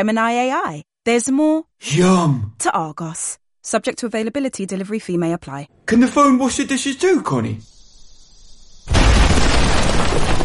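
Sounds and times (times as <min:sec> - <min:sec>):
speech: 0:00.0 - 0:07.7
bomb explosion: 0:08.8 - 0:10.4.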